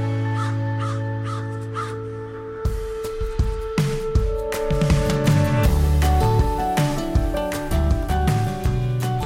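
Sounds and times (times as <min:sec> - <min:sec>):
music: 0:00.0 - 0:09.2
crows cawing: 0:00.2 - 0:02.4.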